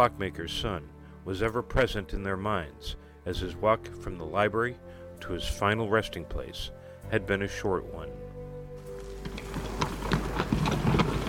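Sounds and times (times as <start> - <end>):
speech: 0.0 - 8.2
hooves of a horse-drawn stagecoach passing through a small Connecticut village: 8.8 - 11.2.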